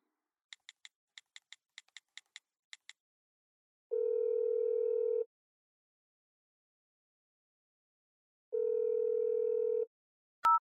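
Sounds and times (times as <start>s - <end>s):
telephone ringing tones: 3.9s - 5.3s, 8.6s - 9.9s
telephone keypad beeps: 10.4s - 10.6s.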